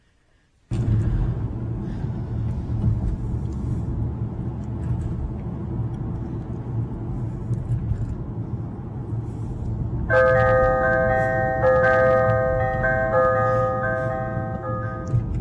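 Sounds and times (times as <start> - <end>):
steady low rumble of a car interior: 0.7 - 15.3
church bell chime melody played in a car: 10.1 - 15.3.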